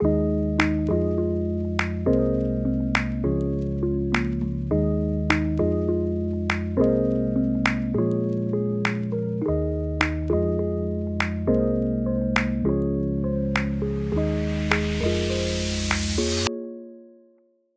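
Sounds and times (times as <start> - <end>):
hopeful chords loop in G major: 0.0 - 16.5
hand clap: 0.6 - 0.9, 1.8 - 2.1, 3.0 - 3.2, 4.2 - 4.4, 5.3 - 5.6, 6.5 - 6.9, 7.7 - 8.0, 8.9 - 9.1, 10.0 - 10.3, 11.2 - 11.5, 12.4 - 12.6, 13.6 - 13.8, 14.7 - 15.2, 15.8 - 16.4.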